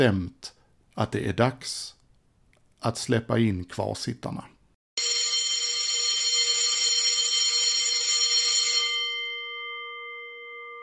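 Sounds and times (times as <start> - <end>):
speech: 0.0 - 0.4, 1.0 - 2.0, 2.8 - 4.5
electric school bell ringing: 5.0 - 10.8.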